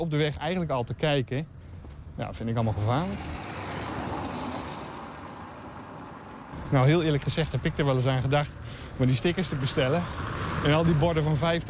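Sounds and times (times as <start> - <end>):
speech: 0.0 - 1.6, 2.2 - 3.4, 6.6 - 11.6
street traffic with trucks and speeding cars: 1.4 - 11.6
vehicle rushing past on a street: 2.5 - 8.0, 9.1 - 11.6.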